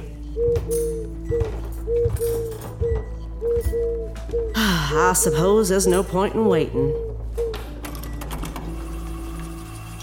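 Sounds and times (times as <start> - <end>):
pigeon cooing: 0.4 - 4.6
speech: 3.7 - 7.0.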